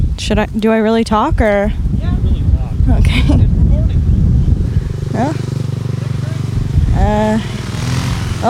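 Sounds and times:
speech: 0:00.2 - 0:02.2, 0:02.9 - 0:03.5, 0:05.2 - 0:05.5
motorcycle roaring past accelerating: 0:01.7 - 0:08.4.

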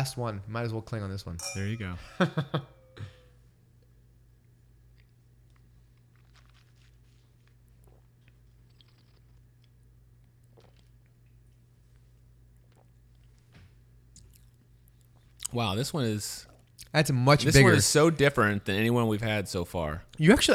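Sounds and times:
speech: 0:00.0 - 0:03.1, 0:15.5 - 0:20.5
steady low electrical hum: 0:00.0 - 0:20.5
laughter: 0:02.0 - 0:03.1
wet sips and slurps of wine tasting: 0:06.0 - 0:09.8, 0:10.5 - 0:11.1.

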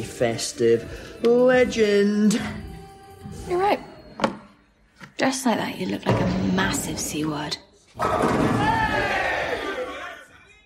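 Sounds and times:
speech: 0:00.0 - 0:02.7, 0:03.4 - 0:04.3, 0:05.2 - 0:09.2
crowd cheering and shouting: 0:08.0 - 0:10.2.

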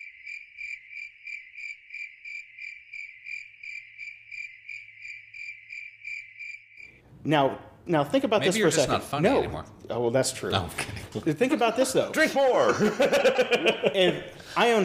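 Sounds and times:
crickets chirping sound effect: 0:00.0 - 0:07.0
speech: 0:07.2 - 0:14.8
laughter: 0:10.7 - 0:14.8.

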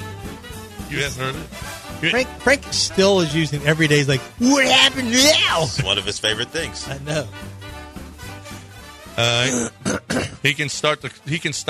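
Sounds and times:
speech: 0:00.9 - 0:07.6, 0:09.2 - 0:11.6
throat clearing: 0:09.2 - 0:10.4.

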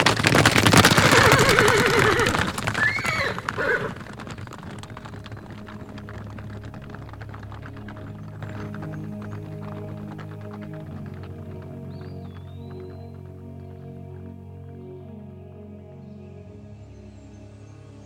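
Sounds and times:
horses' hooves clip-clopping: 0:00.0 - 0:14.4
low musical drone: 0:05.7 - 0:18.0.

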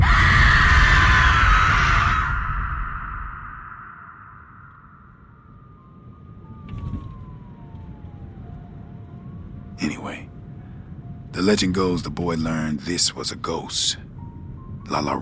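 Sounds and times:
woman screaming: 0:00.0 - 0:03.7
speech: 0:11.4 - 0:14.2, 0:14.9 - 0:15.2.

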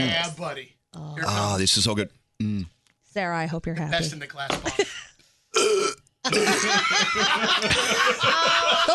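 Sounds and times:
speech: 0:00.0 - 0:08.9
person burping after drinking Coca-Cola: 0:02.4 - 0:02.8, 0:05.5 - 0:06.6
throaty gulp: 0:05.5 - 0:06.4
laughter: 0:06.3 - 0:08.9.

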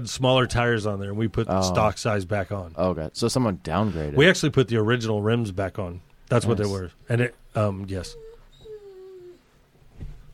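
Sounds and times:
speech: 0:00.0 - 0:08.2
dog whining: 0:07.4 - 0:09.6.

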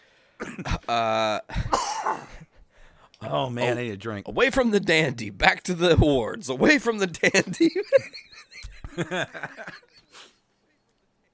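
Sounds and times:
fit of harsh barking coughs: 0:00.4 - 0:00.9, 0:01.6 - 0:02.5
speech: 0:00.6 - 0:02.4, 0:03.2 - 0:09.9
laughter: 0:07.1 - 0:10.3.

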